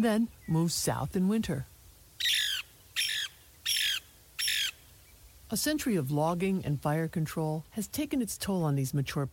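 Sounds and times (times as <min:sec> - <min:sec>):
speech: 0:00.0 - 0:02.4, 0:05.5 - 0:09.3
Lewis's woodpecker calling harshly: 0:02.1 - 0:05.6.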